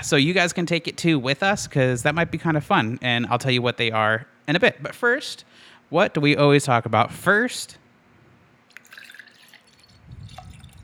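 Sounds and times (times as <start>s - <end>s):
speech: 0.0s - 7.8s
liquid pouring: 8.7s - 10.8s.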